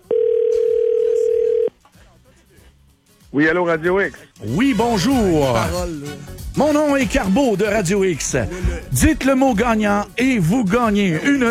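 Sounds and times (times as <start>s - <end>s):
telephone ringback tone on a call to a live radio contest line: 0.0s - 1.7s
speech: 3.3s - 11.4s.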